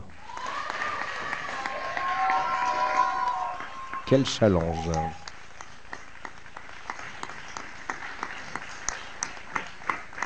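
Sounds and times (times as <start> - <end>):
audience clapping at the end of a performance: 0.0 - 10.2
audience cheering with raised voices and whoops: 0.1 - 5.1
speech: 4.1 - 5.2.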